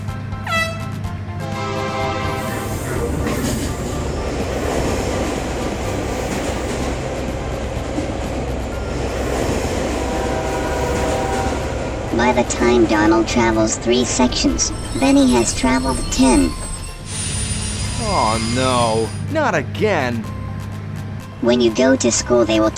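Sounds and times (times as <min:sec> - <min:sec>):
brief horn-like tone: 0:00.4 - 0:03.1, 0:09.9 - 0:11.9, 0:14.5 - 0:19.2
train racing along the rails with wheels rattling: 0:01.0 - 0:21.2
speech: 0:12.2 - 0:16.6, 0:18.1 - 0:20.4, 0:21.4 - 0:22.7.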